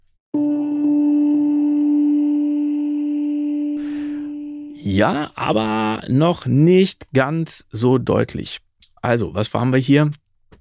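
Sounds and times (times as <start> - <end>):
percussive synthesized tone with MIDI echo effect: 0.4 - 4.8
speech: 4.8 - 10.2.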